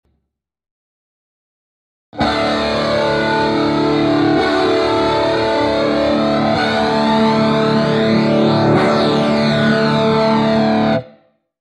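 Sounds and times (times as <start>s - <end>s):
flanged guitar: 2.2s - 11.2s.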